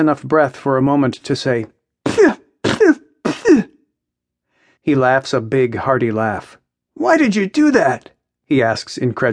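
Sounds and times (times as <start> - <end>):
speech: 0.0 - 2.4, 4.8 - 9.3
woman coughing: 2.1 - 3.8.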